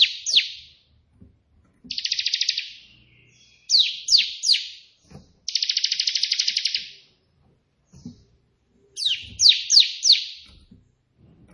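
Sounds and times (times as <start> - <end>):
white prinia song with buzzy trill and sharp descending chirps: 0.0 - 0.8, 1.9 - 10.7.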